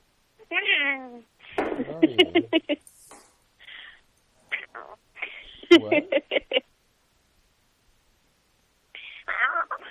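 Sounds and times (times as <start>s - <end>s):
person imitating a cat meowing: 0.4s - 1.3s, 9.0s - 9.9s
speech: 0.5s - 2.9s, 5.7s - 6.6s
laughter: 1.8s - 2.8s, 5.5s - 6.6s
short breathy noises: 3.6s - 4.1s.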